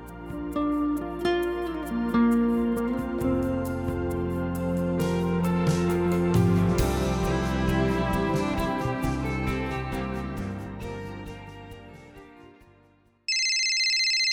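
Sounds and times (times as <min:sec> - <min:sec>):
music: 0:00.0 - 0:13.3
telephone ringing with a shrill electronic trill: 0:13.3 - 0:14.3.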